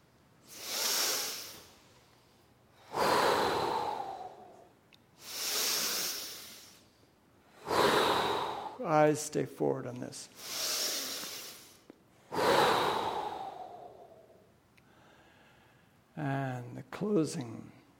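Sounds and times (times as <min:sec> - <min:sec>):
slow deep breathing during a yoga exercise: 0:00.4 - 0:08.9, 0:10.4 - 0:16.0
speech: 0:08.8 - 0:10.7, 0:16.2 - 0:17.8.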